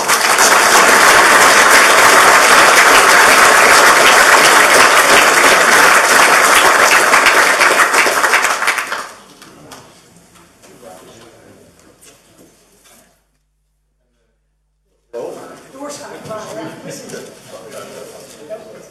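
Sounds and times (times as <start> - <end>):
applause from a sizable audience: 0.0 - 9.3.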